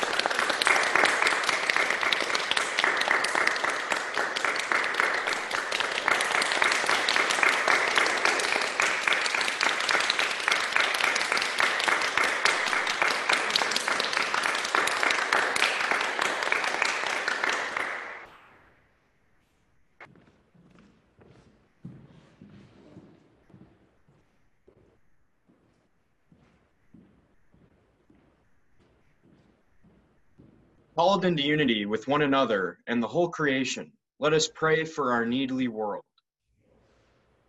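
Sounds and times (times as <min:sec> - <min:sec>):
applause from many hands over a video call: 0:00.0 - 0:18.5
speech: 0:31.0 - 0:36.1.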